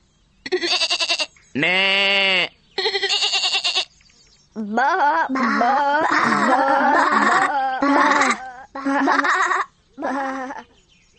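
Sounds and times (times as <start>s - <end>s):
sheep bleating: 0.5s - 3.9s
laughter: 4.8s - 10.6s.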